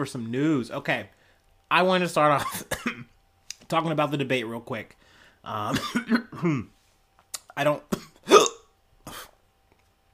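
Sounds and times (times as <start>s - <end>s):
speech: 0.0s - 3.1s, 3.7s - 6.8s, 7.6s - 8.1s
burp: 8.2s - 8.7s.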